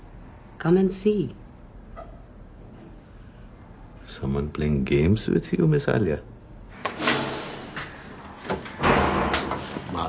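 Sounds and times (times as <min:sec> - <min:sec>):
speech: 0:00.6 - 0:01.4, 0:04.2 - 0:06.3
door sliding open with scraping and grinding: 0:06.8 - 0:10.0.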